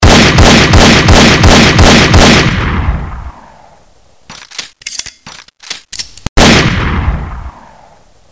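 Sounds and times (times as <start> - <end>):
gunshots: 0.0 - 3.5, 6.4 - 7.9.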